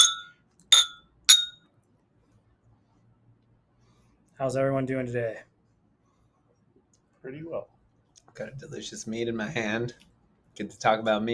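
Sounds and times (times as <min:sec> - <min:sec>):
glasses clinking in a toast: 0:00.0 - 0:01.6
speech: 0:04.4 - 0:05.5, 0:07.2 - 0:07.8, 0:08.4 - 0:11.3.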